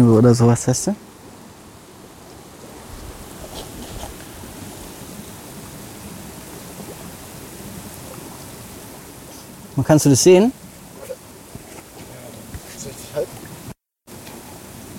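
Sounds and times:
speech: 0.0s - 1.2s, 9.8s - 10.6s
hot spring water bubbling and gushing out of rock: 3.0s - 9.6s.

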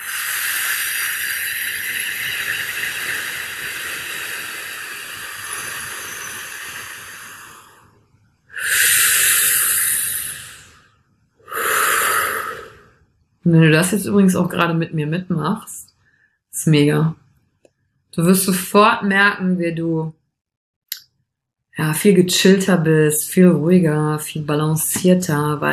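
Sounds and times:
deep breathing in and out: 0.0s - 13.1s, 15.9s - 16.5s
speech: 13.5s - 15.8s, 16.6s - 17.2s, 18.2s - 20.2s, 21.8s - 25.7s.

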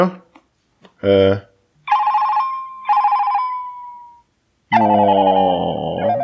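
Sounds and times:
speech: 0.0s - 0.2s, 1.0s - 1.5s
phone ringtone of warbling electronic trills: 1.9s - 6.2s.

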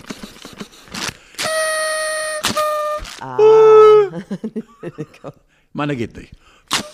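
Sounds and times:
party blowout horn giving a buzzy reedy toot: 1.4s - 4.1s
laughter: 3.4s - 5.4s
speech: 4.2s - 6.9s.

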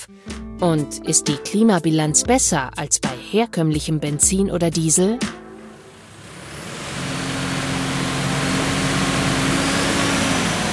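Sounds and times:
speech: 0.0s - 5.4s
heavy tractor engine revving on test bench: 5.6s - 10.7s.

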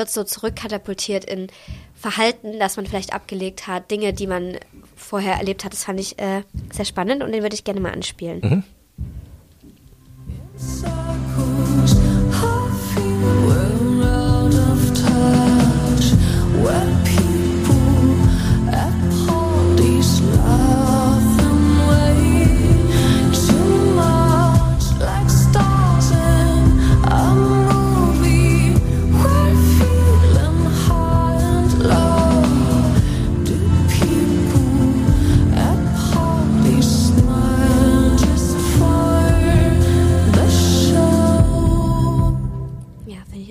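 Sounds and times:
speech: 0.0s - 8.8s
pop song with woman singing over dense band backing: 10.3s - 43.4s.

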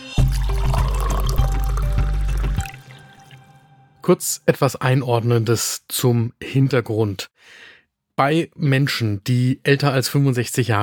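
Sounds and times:
coffee poured into a cup: 0.2s - 3.6s
speech: 4.0s - 10.8s.

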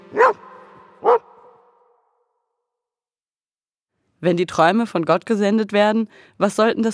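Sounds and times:
dog barking: 0.1s - 2.0s
speech: 4.2s - 6.9s.

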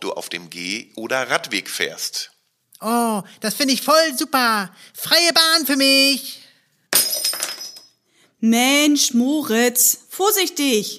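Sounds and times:
speech: 0.0s - 6.4s, 8.4s - 10.9s
glass breaking and shattering with a loud crash: 6.9s - 8.0s.

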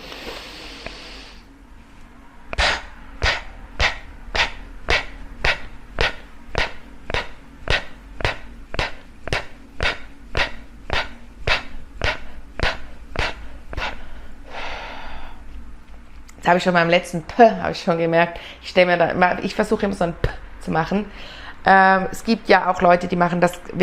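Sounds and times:
forceful rhythmic breaths through the nose or mouth in a breathing exercise: 2.5s - 15.6s
speech: 16.5s - 23.8s.

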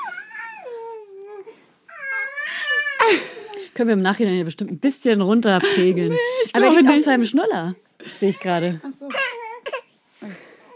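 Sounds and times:
baby boy crying: 0.0s - 3.5s, 9.1s - 9.9s
speech: 3.1s - 9.2s.

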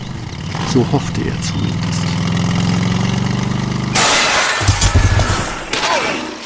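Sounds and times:
motorcycle engine revving: 0.0s - 5.7s
speech: 0.7s - 2.3s
motorcycle crash with clattering and shattering impacts: 3.9s - 6.4s.

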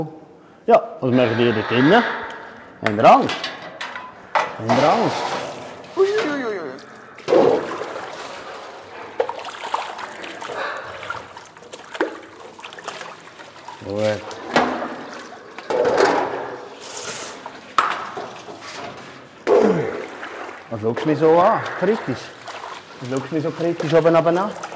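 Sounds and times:
speech: 0.0s - 3.5s, 4.6s - 5.4s, 20.8s - 22.4s, 23.0s - 24.6s
water poured and splashed while changing water in a bird cage: 4.6s - 24.7s
person murmuring quietly to birds: 6.0s - 7.0s.

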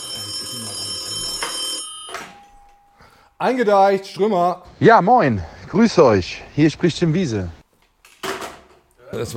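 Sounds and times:
telephone ringing with a trilling bell tone: 0.0s - 3.0s
speech: 3.4s - 7.6s, 9.1s - 9.3s.

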